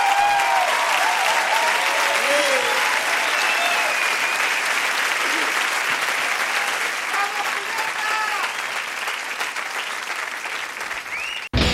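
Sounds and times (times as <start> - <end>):
cheers and whistles: 0.0 - 4.8, 11.0 - 11.6
large crowd audience applause: 0.0 - 11.7.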